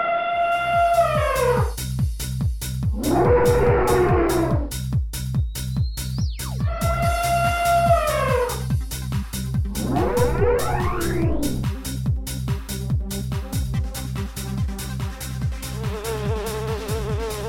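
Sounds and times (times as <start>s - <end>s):
warped distorted elephant trumpeting: 0.0s - 1.7s, 2.9s - 4.8s, 6.6s - 8.7s, 9.7s - 11.7s
steady pulsing beat: 1.2s - 17.3s.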